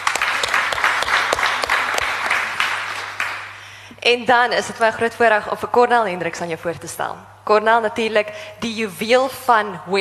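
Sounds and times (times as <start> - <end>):
audience applauding: 0.0 - 3.6
speech: 4.0 - 9.9.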